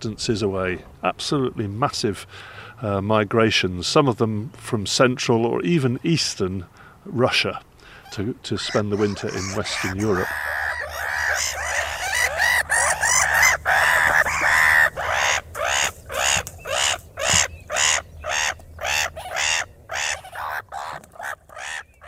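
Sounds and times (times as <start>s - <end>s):
speech: 0.0s - 10.5s
black-headed gulls squawking: 7.9s - 22.0s.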